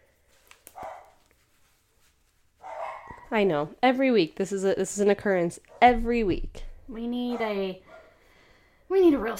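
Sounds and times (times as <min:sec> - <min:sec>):
dog barking: 0:00.8 - 0:01.2, 0:02.6 - 0:03.4, 0:07.2 - 0:08.2
speech: 0:03.3 - 0:07.9, 0:08.9 - 0:09.3.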